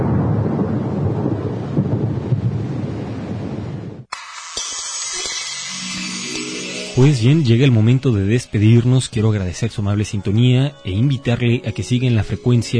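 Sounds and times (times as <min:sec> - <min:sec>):
deep continuous rumble of thunder: 0:00.0 - 0:04.1
wind: 0:00.0 - 0:05.6
speech: 0:07.0 - 0:12.7.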